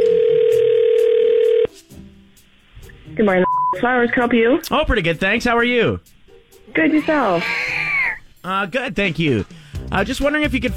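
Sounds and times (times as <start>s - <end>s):
telephone ringback tone during a call to a florist: 0.0s - 1.7s
speech: 3.2s - 7.7s, 8.4s - 10.7s.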